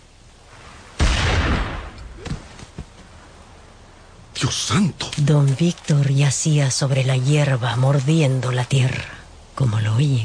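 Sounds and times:
gunshot as a trigger is pulled: 1.0s - 2.5s
speech: 4.4s - 10.2s.

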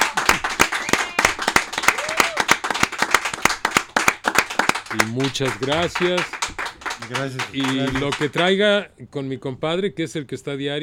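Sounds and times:
small group applauding with hand claps: 0.0s - 8.6s
speech: 4.9s - 10.8s.

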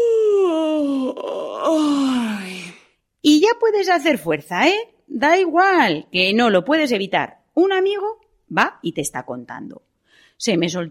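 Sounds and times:
low drawn-out sigh: 0.0s - 2.9s
person yawning with a long groaning moan: 0.0s - 3.0s
speech: 3.7s - 10.8s.

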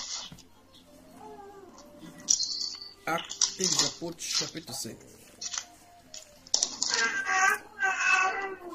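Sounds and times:
speech: 3.1s - 5.3s
child crying in wavering wails: 6.9s - 8.7s.

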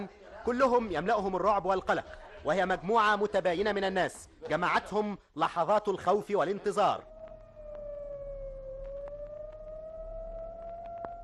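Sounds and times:
speech: 0.0s - 7.1s
faint clicks: 7.0s - 11.2s
fire engine siren wailing as the truck passes: 7.0s - 11.2s.

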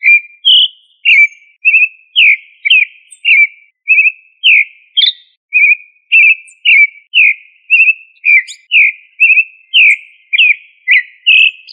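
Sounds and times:
thrush song of whistled notes, Familia Turdidae: 0.0s - 11.7s.

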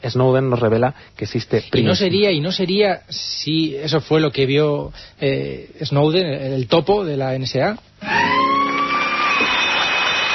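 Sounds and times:
speech: 0.0s - 8.4s
sirens wailing at night: 8.0s - 9.8s.

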